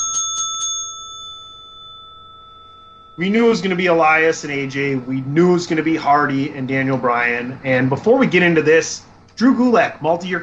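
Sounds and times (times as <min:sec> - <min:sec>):
bright bicycle-style bell dinging: 0:00.0 - 0:04.6
speech: 0:03.2 - 0:10.4.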